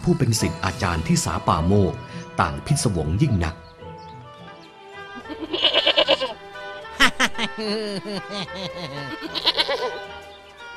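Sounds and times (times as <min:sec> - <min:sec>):
speech: 0:00.0 - 0:03.7, 0:07.6 - 0:10.2
goat bleating loudly: 0:05.2 - 0:06.8, 0:08.7 - 0:10.1
laughter: 0:06.9 - 0:10.0.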